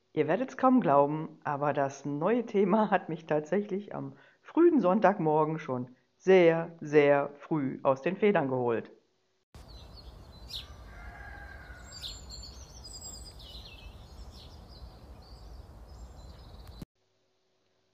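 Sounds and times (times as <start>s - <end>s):
speech: 0.2s - 9.0s
small birds chirping and tweeting: 9.6s - 16.8s
rooster crowing: 10.4s - 13.2s.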